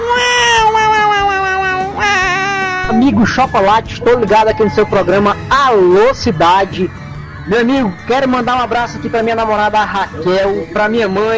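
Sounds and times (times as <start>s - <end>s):
voice imitating a cat meowing: 0.0s - 3.2s
speech: 3.2s - 11.3s.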